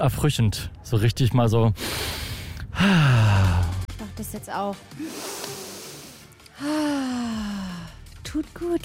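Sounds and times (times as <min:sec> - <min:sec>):
speech: 0:00.0 - 0:02.2, 0:02.8 - 0:05.6, 0:06.6 - 0:07.7, 0:08.3 - 0:08.8
deep breath in: 0:01.8 - 0:03.8, 0:05.0 - 0:08.1
loud voiced sigh: 0:01.8 - 0:03.9, 0:05.0 - 0:08.0.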